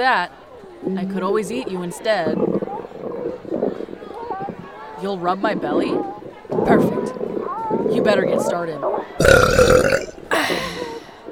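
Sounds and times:
speech: 0:00.0 - 0:02.6, 0:05.0 - 0:07.2, 0:07.8 - 0:10.1
long loud deep burp: 0:09.2 - 0:11.2.

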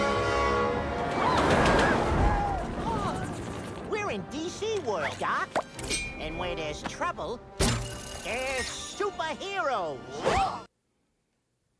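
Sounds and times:
runaway train horn blaring: 0:00.0 - 0:01.2
runaway train rumbling: 0:00.0 - 0:04.8
speech: 0:04.9 - 0:05.6, 0:06.3 - 0:07.6, 0:08.2 - 0:10.6.

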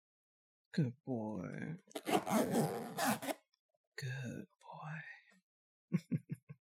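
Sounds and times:
speech: 0:00.7 - 0:03.4, 0:04.0 - 0:05.2
leather boot zipper being pulled up: 0:01.9 - 0:03.4.

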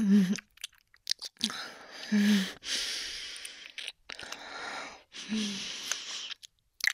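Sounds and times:
voice performing a vampire biting and drinking blood with wet mouth sounds: 0:00.2 - 0:01.7, 0:03.3 - 0:04.5, 0:05.7 - 0:06.9.

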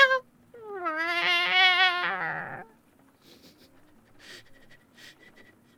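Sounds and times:
kitten meowing: 0:00.0 - 0:02.7.

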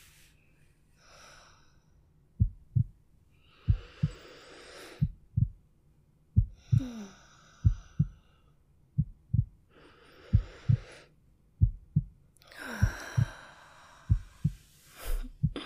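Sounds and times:
gentle breathing: 0:00.0 - 0:02.0, 0:03.3 - 0:05.5, 0:06.4 - 0:11.2, 0:12.4 - 0:15.6
slow calm heartbeat: 0:02.4 - 0:03.0, 0:03.6 - 0:04.3, 0:05.0 - 0:05.7, 0:06.3 - 0:07.0, 0:07.6 - 0:08.3, 0:08.9 - 0:11.0, 0:11.6 - 0:15.6.

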